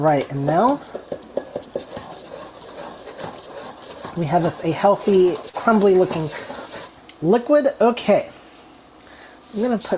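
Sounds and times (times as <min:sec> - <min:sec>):
speech: 0:00.0 - 0:01.0, 0:04.2 - 0:06.4, 0:07.2 - 0:08.3, 0:09.5 - 0:09.9
spoon stirring a mixture in a bowl while cooking: 0:00.0 - 0:07.2.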